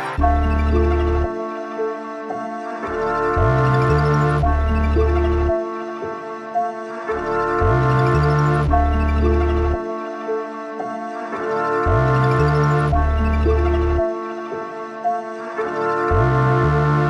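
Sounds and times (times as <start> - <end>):
melody loop at 113 BPM in D minor: 0.2 - 1.9, 2.7 - 10.5, 11.3 - 17.0.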